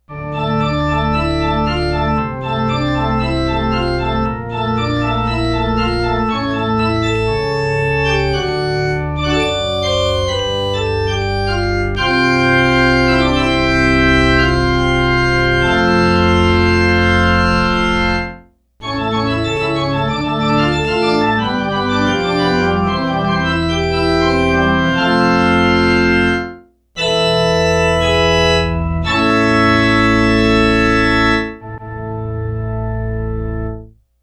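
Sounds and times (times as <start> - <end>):
positive pipe organ playing: 0.0 - 33.9.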